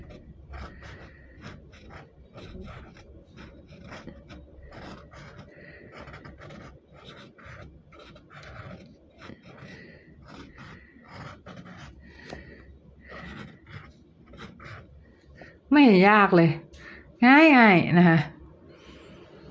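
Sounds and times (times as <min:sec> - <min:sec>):
fountain pen scratching across paper while drawing a rose: 0:00.0 - 0:15.6
speech: 0:15.8 - 0:16.6, 0:17.2 - 0:18.3.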